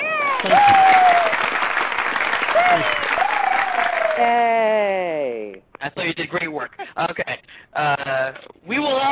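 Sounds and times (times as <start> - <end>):
crowd applauding: 0.2 - 4.4
speech: 0.4 - 0.9, 5.8 - 9.1.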